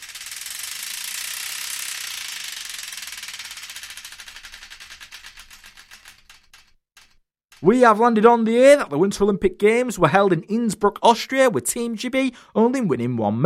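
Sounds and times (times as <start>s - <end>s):
prize wheel spinning and ticking: 0.0s - 8.4s
speech: 7.6s - 13.4s.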